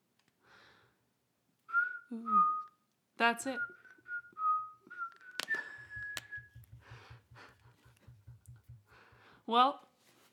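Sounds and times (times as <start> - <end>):
person whistling a melancholy tune: 1.7 - 2.9, 3.6 - 7.1
speech: 2.1 - 2.6, 3.2 - 3.8, 9.5 - 9.9.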